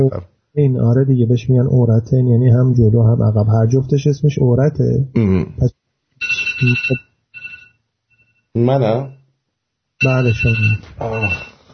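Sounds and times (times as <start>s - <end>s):
speech: 0.0s - 5.8s, 6.6s - 7.1s, 8.5s - 9.2s, 10.0s - 11.5s
mobile phone ringing: 6.2s - 9.2s, 10.0s - 11.6s.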